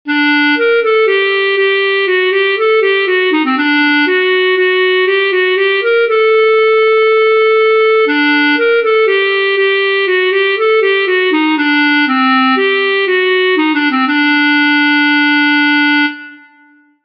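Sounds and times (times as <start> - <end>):
klezmer melody: 0.1 - 17.0.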